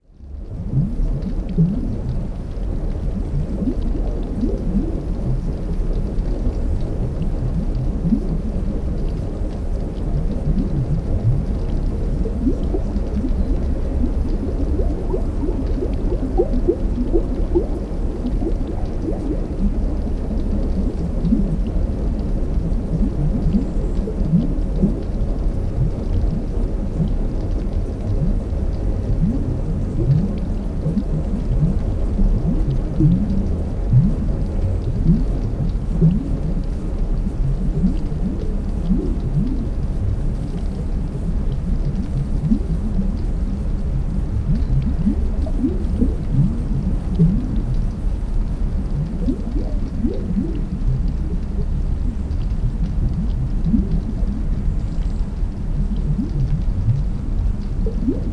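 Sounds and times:
underwater air bubbles rising to the surface of the ocean: 0.1s - 58.3s.

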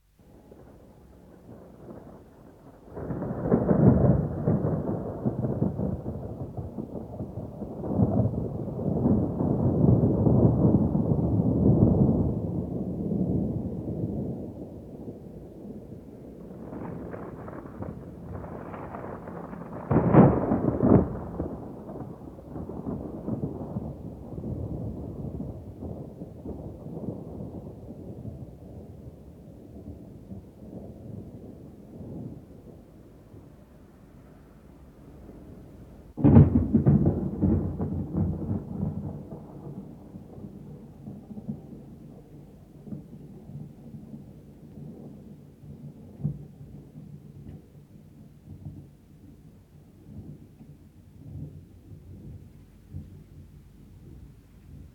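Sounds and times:
distant thunder: 0.2s - 54.9s.

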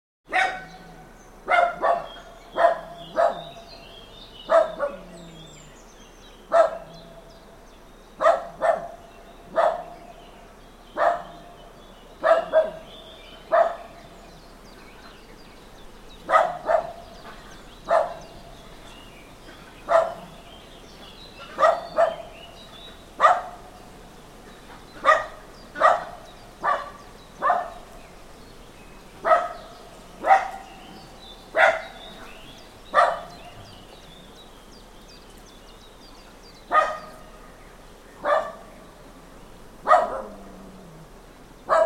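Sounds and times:
small farmyard dog barking: 0.3s - 3.6s, 4.5s - 5.1s, 6.5s - 7.0s, 8.2s - 10.0s, 11.0s - 11.4s, 12.2s - 12.9s, 13.5s - 14.0s, 16.2s - 17.0s, 17.8s - 18.3s, 19.8s - 20.4s, 21.4s - 22.3s, 23.2s - 23.7s, 25.0s - 27.8s, 29.2s - 30.7s, 31.5s - 32.0s, 32.9s - 33.6s, 36.7s - 37.3s, 38.2s - 38.7s, 39.8s - 40.5s, 41.7s - 41.8s.

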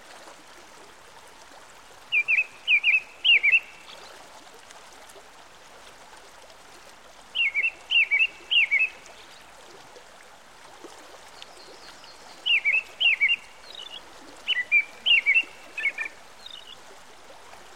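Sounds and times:
American robin song by a stream: 2.1s - 4.0s, 7.4s - 9.4s, 11.6s - 16.8s.

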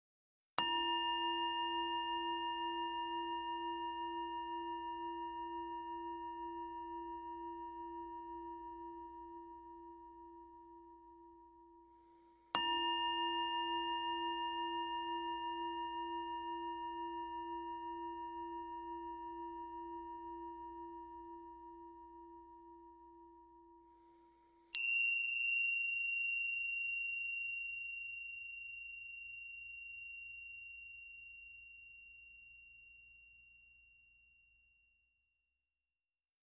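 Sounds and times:
Tibetan singing bowls: 0.6s - 33.7s.

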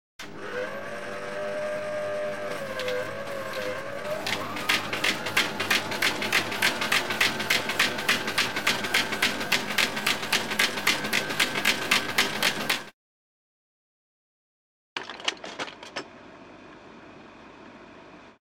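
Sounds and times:
franking machine: 0.2s - 12.9s.

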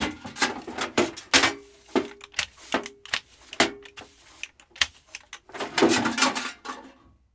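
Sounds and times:
dusting with a dustpan: 0.5s - 5.5s.

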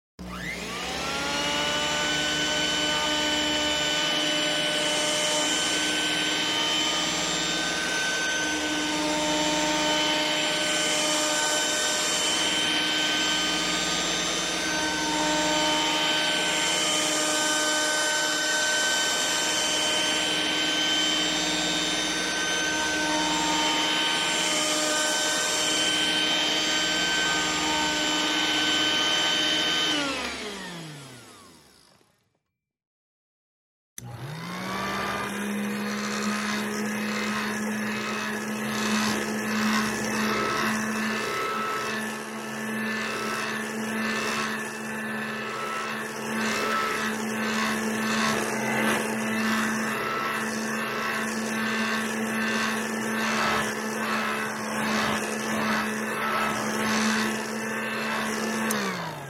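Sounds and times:
vacuum cleaner: 0.2s - 32.4s, 34.0s - 59.2s.

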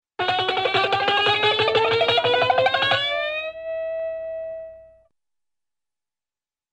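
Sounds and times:
guitar glissando: 0.2s - 4.9s.

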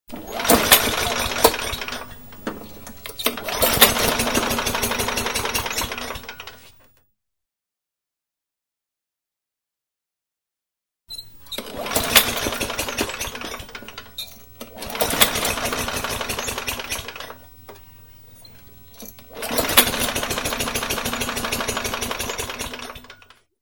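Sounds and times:
motorcycle starter: 0.1s - 6.8s, 11.4s - 17.8s, 18.5s - 23.4s.

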